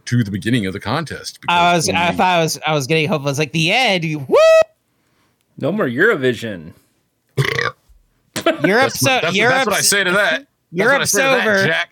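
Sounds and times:
speech: 0.1 - 4.7, 5.6 - 6.8, 8.6 - 11.8
burp: 7.4 - 7.8.

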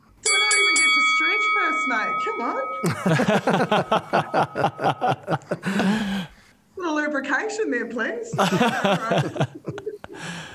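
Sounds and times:
bright bell struck as a game start signal: 0.2 - 5.6
speech: 2.2 - 6.3, 7.2 - 9.6
laughter: 2.8 - 6.3, 8.3 - 10.5.

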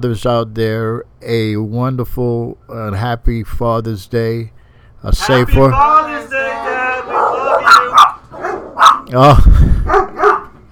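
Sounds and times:
speech: 0.0 - 8.0, 9.1 - 9.7
dog barking sharply: 7.1 - 9.1, 9.8 - 10.6.

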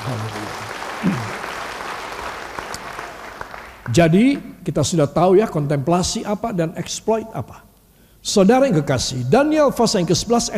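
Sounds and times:
audience applause: 0.0 - 4.0
speech: 3.9 - 10.5.

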